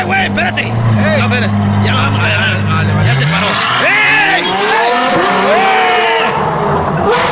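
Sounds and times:
speech: 0:00.0 - 0:02.5
car driving past with engine revving: 0:00.0 - 0:07.3.

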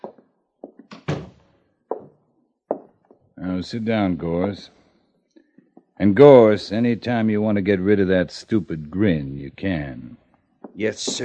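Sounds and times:
office door closing with a solid thunk: 0:00.9 - 0:01.4
speech: 0:03.4 - 0:04.8, 0:06.0 - 0:10.2, 0:10.8 - 0:11.2.

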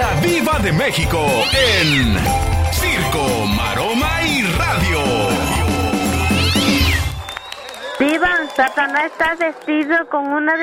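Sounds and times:
speech: 0:00.2 - 0:05.6, 0:08.2 - 0:10.6
cat meowing: 0:01.4 - 0:02.4, 0:06.1 - 0:07.1.

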